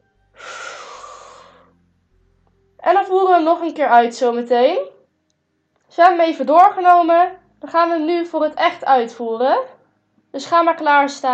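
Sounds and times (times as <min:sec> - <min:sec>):
person breathing in during an exercise routine: 0:00.4 - 0:01.7
speech: 0:03.0 - 0:05.0, 0:05.9 - 0:09.7, 0:10.3 - 0:11.3.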